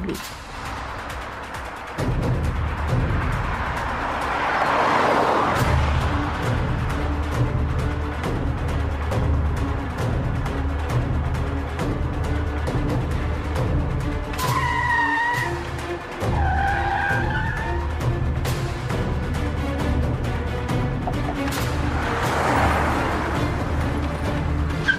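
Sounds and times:
road and car engine rumble: 0.0 - 24.9
car tires squealing as a car skids to a stop on a quiet street: 2.7 - 6.5, 14.3 - 18.1, 21.0 - 24.9.

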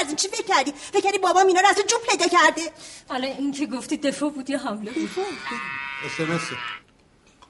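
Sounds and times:
speech: 0.2 - 6.8
sheep-like bleat as an animal-noise message alert: 4.9 - 6.8.

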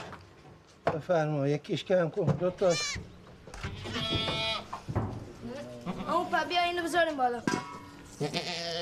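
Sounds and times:
speech: 0.9 - 3.1, 6.1 - 8.8
young goat bleating: 2.6 - 3.0, 3.7 - 4.7, 5.5 - 6.4, 8.2 - 8.8.

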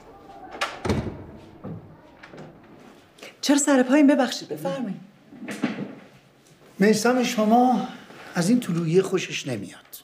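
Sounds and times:
door being closed with dull thumps and knocks: 0.5 - 2.7
speech: 3.4 - 5.1, 6.8 - 10.0.

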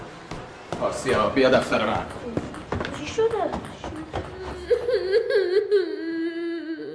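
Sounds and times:
speech: 0.9 - 2.4
child whimpering and crying: 4.4 - 6.9.

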